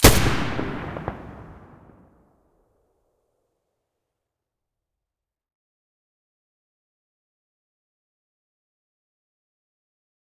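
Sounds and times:
G36 rifle muzzle shot in stereo: 0:00.0 - 0:02.0.

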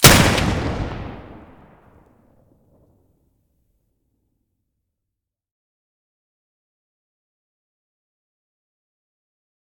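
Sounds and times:
Benelli shotgun gunshot: 0:00.0 - 0:01.9.

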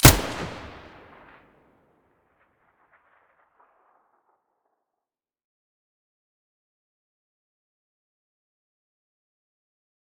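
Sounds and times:
weapon muzzle blast: 0:00.0 - 0:01.4.

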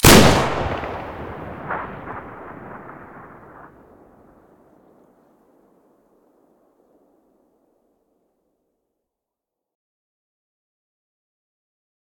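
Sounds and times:
BM16 shotgun short shot: 0:00.0 - 0:04.6.

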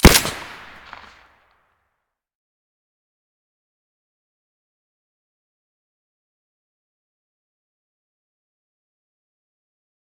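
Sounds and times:
Saiga shotgun firing with a silencer: 0:00.0 - 0:01.3.

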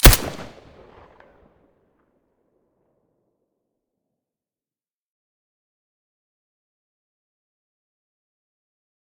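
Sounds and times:
Colt 1911 pistol shot with silencer: 0:00.0 - 0:01.0.

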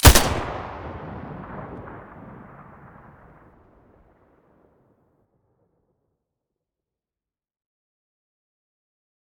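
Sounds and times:
SCAR rifle muzzle blast in stereo: 0:00.0 - 0:02.6.

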